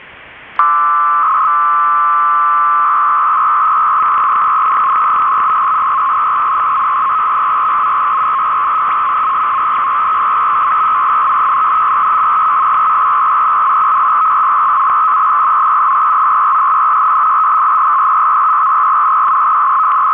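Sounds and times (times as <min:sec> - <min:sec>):
Bell 103 FSK modem sending a long 300 baud data burst: 0:00.6 - 0:20.1.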